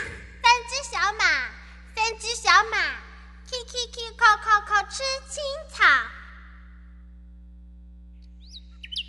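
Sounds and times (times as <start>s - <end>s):
low droning hum: 0.1s - 9.0s
small birds chirping: 8.2s - 9.0s.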